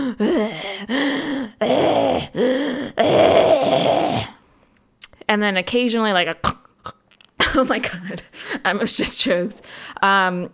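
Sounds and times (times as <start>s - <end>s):
speech: 0.0s - 1.0s, 5.3s - 6.5s, 7.6s - 10.5s
voice imitating a sleeping person's loud heavy breathing: 0.0s - 4.4s.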